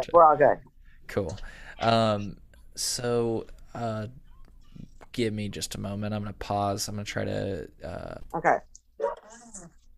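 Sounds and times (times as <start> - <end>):
speech: 0.0 - 4.2, 5.1 - 8.7
dogs wanting water barking: 9.0 - 9.4.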